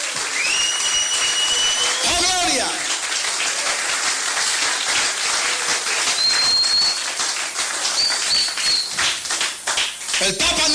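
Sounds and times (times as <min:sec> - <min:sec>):
audience clapping hands: 0:00.0 - 0:10.7.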